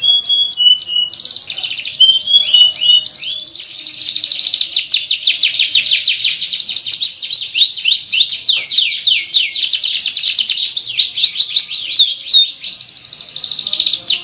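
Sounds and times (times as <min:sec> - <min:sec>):
faint steady high tone: 0:00.0 - 0:04.5
canary training song: 0:00.0 - 0:14.2.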